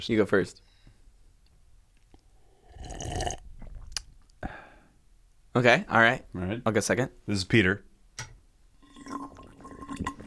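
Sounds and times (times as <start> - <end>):
speech: 0.0 - 0.7, 5.6 - 7.9
person sipping water with a wet slurp: 2.5 - 4.1, 8.8 - 10.2
swallow: 2.5 - 4.6, 8.8 - 10.2
lip smack: 3.6 - 4.4.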